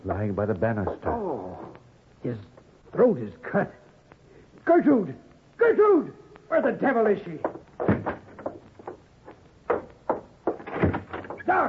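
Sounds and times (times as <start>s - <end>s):
speech: 0.0s - 1.3s, 2.2s - 3.8s, 4.6s - 7.6s
bedroom door handle and frame knocking, rattling and thudding as opened: 7.4s - 9.0s, 9.7s - 11.5s.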